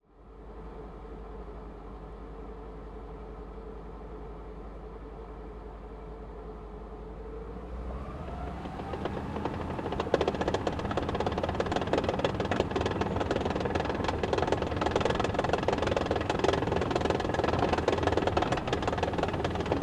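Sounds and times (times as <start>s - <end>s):
M18 Hellcat tank destroyer tracks driving, reversing and stopping, onboard: 7.5s - 19.8s.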